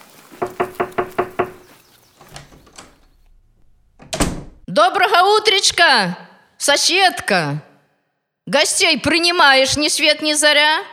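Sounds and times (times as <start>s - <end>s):
shuffling as someone steps inside: 0.0s - 4.0s
door creaking as it opens: 0.0s - 4.7s
knocking on a wooden door: 0.4s - 1.8s
speech: 4.8s - 7.7s, 8.5s - 10.9s.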